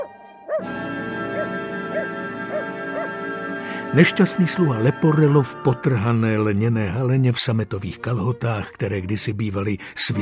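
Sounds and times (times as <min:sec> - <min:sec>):
distant dog barking: 0:00.0 - 0:00.7, 0:01.3 - 0:03.2
speech: 0:03.9 - 0:10.2.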